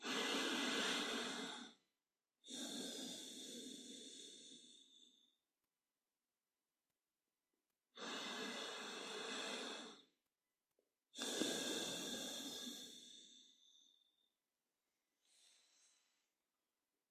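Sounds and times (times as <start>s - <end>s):
deep breaths in and out in a meditation posture: 0.0s - 5.4s, 8.0s - 10.2s, 11.2s - 14.4s, 15.2s - 16.3s.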